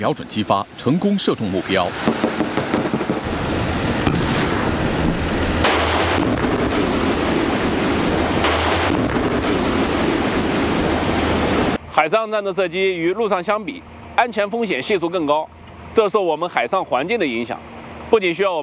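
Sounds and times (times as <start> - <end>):
speech: 0.0 - 2.3, 12.0 - 18.6
rough sea waves and crashing swells: 0.0 - 11.8
strong wind roaring: 0.0 - 11.8.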